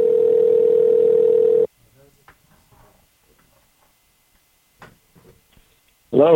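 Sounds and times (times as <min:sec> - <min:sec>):
electronic phone call ringing tone: 0:00.0 - 0:01.7
speech: 0:06.2 - 0:06.3.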